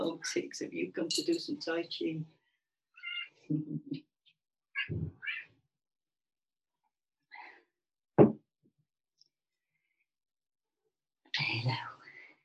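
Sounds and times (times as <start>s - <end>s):
speech: 0.2s - 2.4s, 3.5s - 4.0s, 4.9s - 5.2s
domestic cat meowing and chirping: 3.0s - 3.4s, 4.8s - 5.5s.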